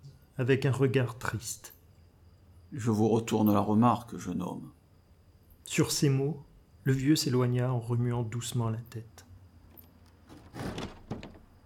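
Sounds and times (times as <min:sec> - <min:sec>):
speech: 0:00.4 - 0:01.8, 0:02.7 - 0:04.8, 0:05.7 - 0:09.3
heavy church doors swinging open with a scraping rush: 0:10.2 - 0:11.6.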